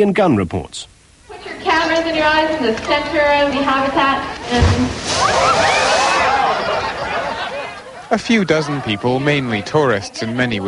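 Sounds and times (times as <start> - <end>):
speech: 0.0 - 1.0, 1.7 - 6.0, 8.1 - 10.6
murmur of crowd voices: 1.3 - 10.6
killer whale splashing in aquarium pool: 4.4 - 7.5
faint rising calls: 5.0 - 7.6
laughter: 5.2 - 10.6.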